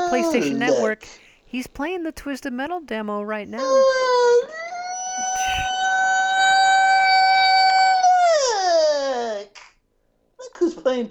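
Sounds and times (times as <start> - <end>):
speech: 0.1 - 4.6
voice imitating a fire siren wail: 4.1 - 9.4.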